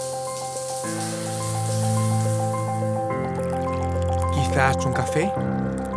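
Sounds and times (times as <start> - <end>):
shower water running: 0.0 - 4.0
speech: 4.5 - 5.8.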